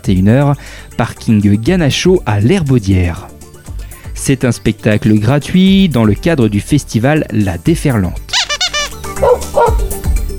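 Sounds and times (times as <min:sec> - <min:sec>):
speech: 0:00.0 - 0:03.3, 0:04.2 - 0:08.3
dog barking: 0:09.1 - 0:09.9.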